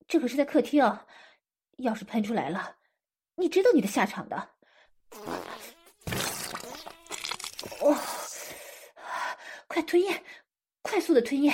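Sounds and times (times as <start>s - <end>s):
speech: 0.1s - 2.8s, 3.4s - 5.4s, 9.8s - 11.5s
farting: 5.1s - 7.8s.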